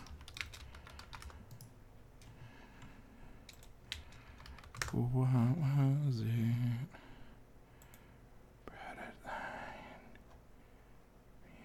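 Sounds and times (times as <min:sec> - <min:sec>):
computer keyboard typing: 0:00.0 - 0:02.3, 0:03.5 - 0:05.0
speech: 0:05.0 - 0:06.9.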